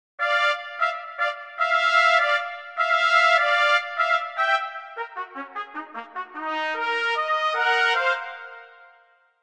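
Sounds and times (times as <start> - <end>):
trumpet section playing: 0.2 - 9.0.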